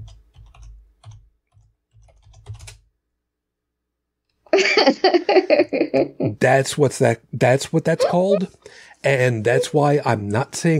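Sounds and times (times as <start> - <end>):
typing on a computer keyboard: 0.0 - 2.9
laughter: 4.6 - 6.4, 8.0 - 8.5
speech: 4.8 - 10.7.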